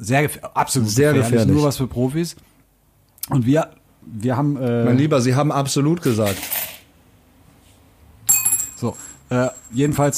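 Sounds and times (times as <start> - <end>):
speech: 0.0 - 2.5, 3.3 - 6.6, 8.8 - 10.1
metal coin dropping: 6.1 - 6.9, 8.3 - 9.0.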